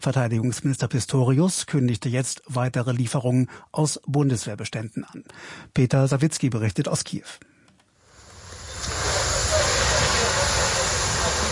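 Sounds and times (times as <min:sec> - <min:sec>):
speech: 0:00.0 - 0:07.5
hiss of steam and spraying water dousing flames on a charred site in southern Kyiv: 0:08.1 - 0:11.5.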